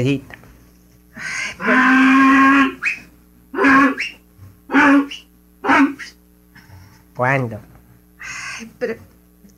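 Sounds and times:
speech: 0.0s - 0.4s, 1.2s - 2.2s, 7.2s - 7.7s, 8.8s - 9.1s
mule braying: 1.2s - 6.2s.

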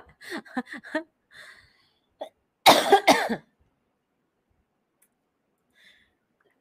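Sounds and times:
person coughing: 2.2s - 3.5s.

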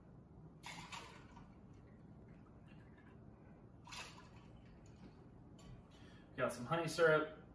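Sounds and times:
cold brew coffee poured into a cocktail: 0.6s - 5.3s
speech: 6.4s - 7.4s.

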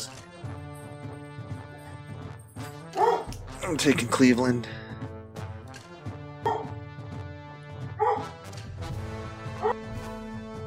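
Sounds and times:
dog barking: 2.9s - 3.4s, 6.4s - 6.8s, 8.0s - 8.4s, 9.6s - 9.8s
speech: 3.7s - 4.8s.

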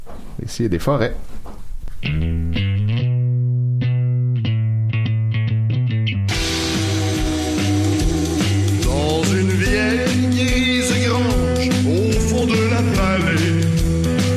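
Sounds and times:
speech: 0.4s - 1.4s
clean electric guitar picking a rhythmic riff: 2.0s - 14.3s
sustained low tone: 6.3s - 10.0s
full band playing loud and dense: 6.3s - 14.3s.

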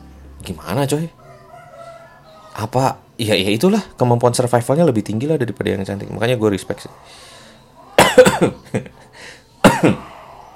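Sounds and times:
speech: 0.5s - 1.2s, 2.6s - 7.4s, 8.4s - 10.1s
person coughing harshly: 8.0s - 8.8s, 9.6s - 10.2s.

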